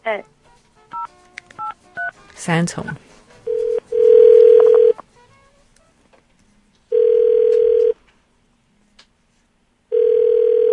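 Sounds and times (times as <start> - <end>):
speech: 0.1 - 0.4, 2.4 - 3.1
telephone dial tone: 3.5 - 5.0, 6.9 - 8.0, 9.9 - 10.7.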